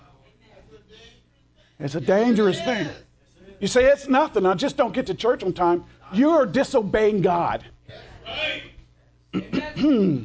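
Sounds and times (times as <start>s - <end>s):
speech: 1.8s - 8.4s, 9.3s - 10.2s
speaker clearing throat during a church service: 9.3s - 10.2s
speaker coughing during a church service: 9.4s - 10.2s.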